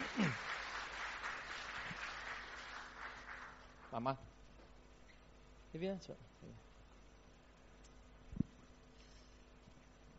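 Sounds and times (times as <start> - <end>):
audience applause welcoming guests: 0.0 - 4.0
speech: 3.9 - 4.4, 5.7 - 6.7.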